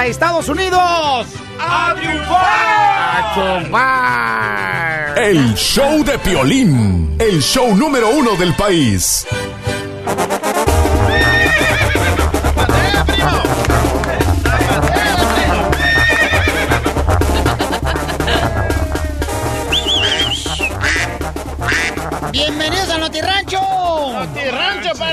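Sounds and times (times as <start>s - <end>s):
speech: 0.0s - 9.5s
loud rhythmic music: 1.6s - 25.1s
Colombian mare neighing: 11.0s - 12.3s, 15.6s - 16.9s
laughter: 12.5s - 20.7s.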